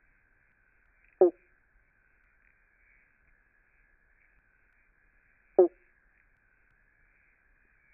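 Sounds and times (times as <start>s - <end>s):
Eastern banjo frog (Limnodynastes dumerilii) plucked bonk call at Glen Innes: 5.6s - 5.8s.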